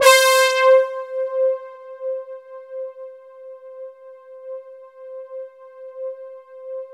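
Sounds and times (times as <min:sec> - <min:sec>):
JV-1080 poly brass synth: 0:00.0 - 0:02.2.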